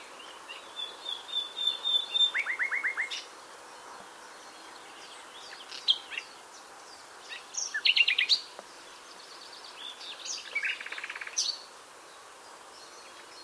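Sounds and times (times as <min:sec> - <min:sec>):
common nightingale Luscinia megarhynchos singing: 0:00.2 - 0:03.3, 0:04.3 - 0:11.7.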